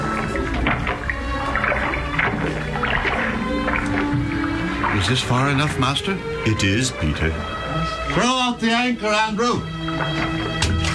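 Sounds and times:
oars rowing a boat through water: 0.0 - 7.0, 9.7 - 10.9
constant wash of water: 0.0 - 10.9
speech: 5.0 - 10.7.

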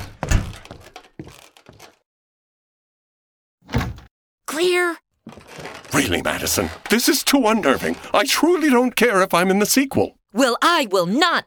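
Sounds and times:
pantry door shutting with a heavy thunk: 0.0 - 0.9, 3.6 - 4.1
short knocks and rattles: 0.0 - 2.0, 5.2 - 8.1
speech: 4.6 - 11.4.

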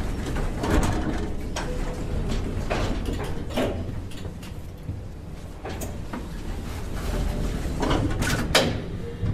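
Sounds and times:
elevator doors sliding open: 0.0 - 9.3
sharp clicks and clunks: 0.2 - 5.0, 7.8 - 8.9.

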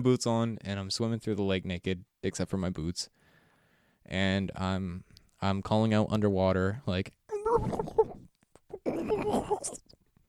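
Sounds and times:
speech: 0.0 - 3.2, 4.0 - 8.0
voice imitating a dolphin call: 7.3 - 9.8.

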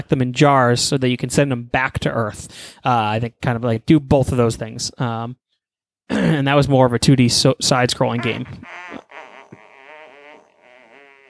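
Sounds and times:
speech: 0.0 - 5.4, 6.1 - 9.0
cartoonish fart sound effect from a video game character: 8.2 - 11.2.

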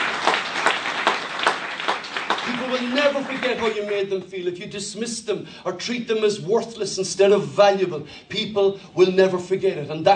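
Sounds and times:
audience applauding to welcome visitors: 0.0 - 4.2
speech: 2.5 - 10.1.

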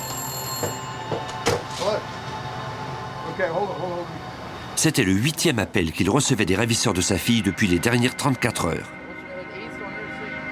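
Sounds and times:
public telephone ringing with an electronic tone: 0.0 - 1.4
speech: 3.4 - 4.2, 4.8 - 9.0.

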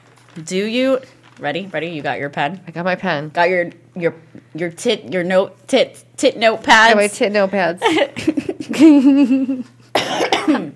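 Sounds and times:
speech: 0.4 - 10.6
laughter: 7.8 - 9.7
harsh raspy wheezy cough: 9.9 - 10.7.

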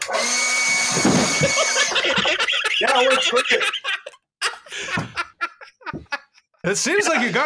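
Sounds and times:
leaf blower running: 0.0 - 2.2
speech: 1.0 - 3.9, 6.6 - 7.4
laughter: 1.3 - 7.4.

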